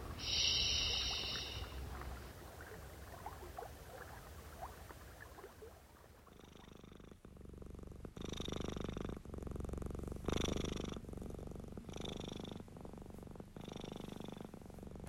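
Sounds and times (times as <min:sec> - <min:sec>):
reclining domestic cat purring: 0:00.0 - 0:01.8, 0:06.2 - 0:15.0.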